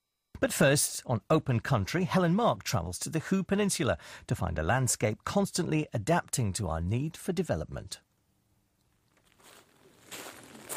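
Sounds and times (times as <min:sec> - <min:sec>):
speech: 0:00.4 - 0:08.1
footsteps crunching on shells and sand beside open mud flats: 0:09.0 - 0:10.7.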